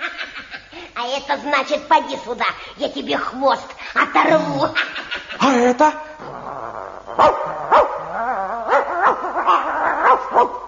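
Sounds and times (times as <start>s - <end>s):
speech: 1.0s - 6.0s, 7.2s - 7.8s
dog barking sharply: 7.2s - 8.1s, 8.7s - 10.6s
dog whining and yelping: 7.2s - 10.6s.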